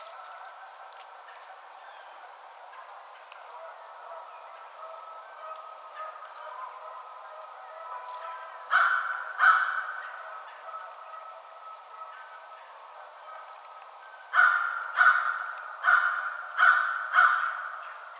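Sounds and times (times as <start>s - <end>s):
American crow giving harsh grating caws: 8.4s - 11.0s, 14.3s - 18.1s.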